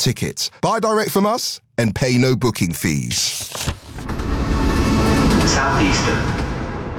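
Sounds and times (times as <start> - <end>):
speech: 0.0 - 4.6, 5.5 - 6.4
Southeastern train rumbling along rails: 4.1 - 6.9.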